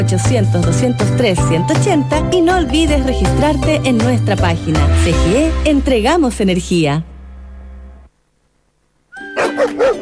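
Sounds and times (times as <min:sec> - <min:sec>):
speech: 0:00.0 - 0:07.1
low droning tone: 0:05.3 - 0:08.1
dogs barking in sharp loud yaps: 0:09.2 - 0:10.0.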